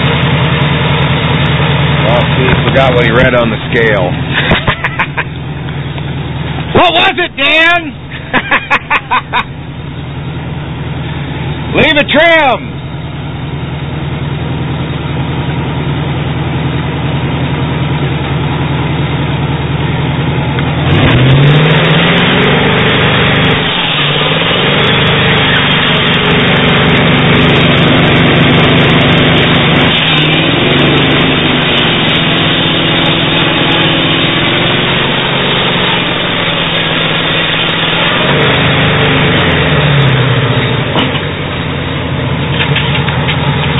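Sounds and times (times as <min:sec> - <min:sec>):
Buick car engine pulling a trailer up a long hill: 0:00.0 - 0:12.0, 0:12.6 - 0:43.7
speech: 0:02.4 - 0:04.4, 0:06.8 - 0:09.6, 0:11.7 - 0:12.8
laughter: 0:04.3 - 0:05.4, 0:08.1 - 0:09.6.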